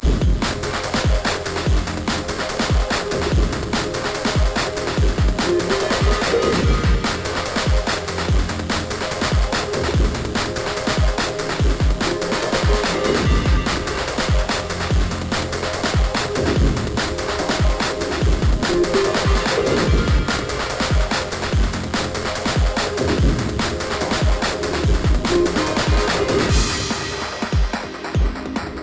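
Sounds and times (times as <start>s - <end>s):
intense industrial breakbeat music: 0.0s - 28.8s.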